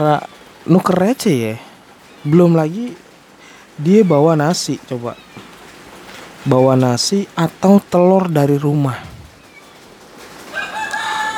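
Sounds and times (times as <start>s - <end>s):
speech: 0.0s - 3.0s, 3.8s - 5.4s, 6.4s - 9.1s
rooster crowing: 10.5s - 11.3s.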